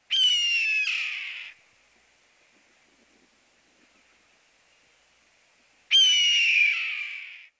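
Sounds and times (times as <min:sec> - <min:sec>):
red-tailed hawk calling: 0:00.1 - 0:01.6, 0:05.9 - 0:07.5.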